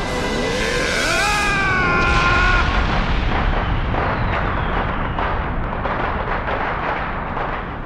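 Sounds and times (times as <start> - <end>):
whistling firework rockets rising: 0.0 - 7.8
booming and crackling firework explosions: 1.2 - 7.8.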